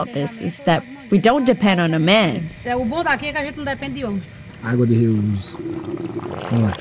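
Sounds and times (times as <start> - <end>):
speech: 0.0 - 6.7
water trickling out of rubber hoses: 5.4 - 6.7.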